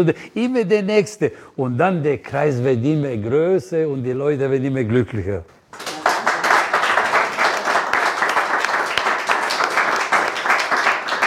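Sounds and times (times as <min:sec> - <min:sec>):
speech: 0:00.0 - 0:05.8
audience applause: 0:05.7 - 0:11.2.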